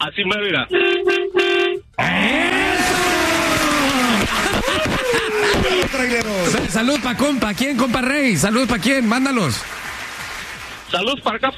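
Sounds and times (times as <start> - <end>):
speech: 0.2 - 1.2, 5.1 - 9.8, 10.9 - 11.5
truck horn honking: 0.6 - 2.3
laughter: 2.0 - 6.8.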